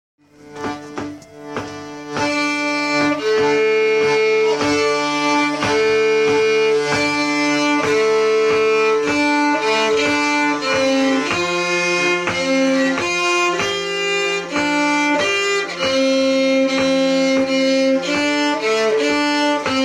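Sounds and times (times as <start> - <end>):
violin playing second voice: 0.2 - 19.8.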